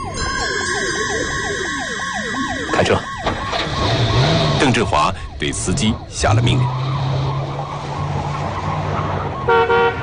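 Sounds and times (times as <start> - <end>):
constant tonal drone: 0.0 - 4.6
police car siren yelping: 0.0 - 10.0
speech: 2.8 - 3.4, 4.6 - 6.8.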